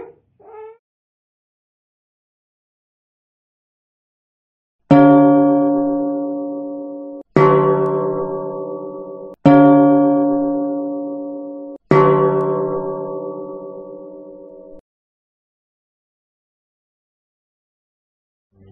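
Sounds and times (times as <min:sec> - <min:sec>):
high and low tones: 0:05.0 - 0:14.8.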